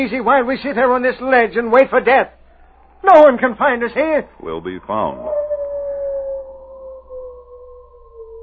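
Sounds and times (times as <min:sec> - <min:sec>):
speech: 0:00.0 - 0:02.4, 0:03.0 - 0:05.4
wolves howling: 0:02.4 - 0:08.4.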